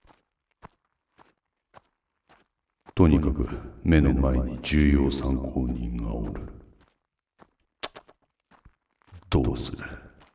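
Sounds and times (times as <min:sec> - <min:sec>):
footsteps on gravel: 0:00.0 - 0:10.3
speech: 0:03.0 - 0:06.6, 0:09.6 - 0:10.0.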